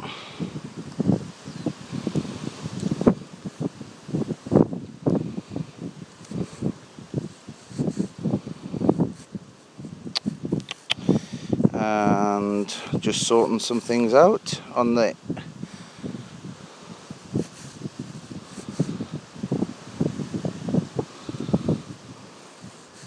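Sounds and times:
gusty wind: 0.0 - 23.0
leaves rustling in wind: 0.0 - 23.0
speech: 13.1 - 15.3.

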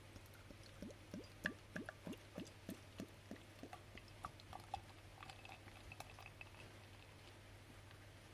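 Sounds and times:
beer fizzing hiss: 0.0 - 7.5
bitter beer glugging out of a bottle into a glass: 0.5 - 7.1.

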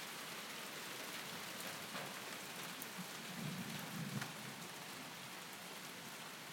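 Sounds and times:
heavy rain during a thunderstorm: 0.0 - 6.5
low rumble of thunder: 3.2 - 4.5.

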